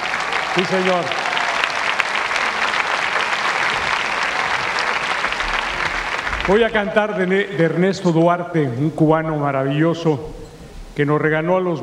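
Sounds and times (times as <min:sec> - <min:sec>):
large audience applause: 0:00.0 - 0:07.5
speech: 0:00.6 - 0:01.2, 0:06.4 - 0:10.4, 0:11.0 - 0:11.8.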